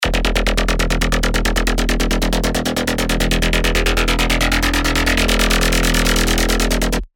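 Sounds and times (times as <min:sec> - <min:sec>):
deep rolling submarine bass: 0:00.0 - 0:07.1.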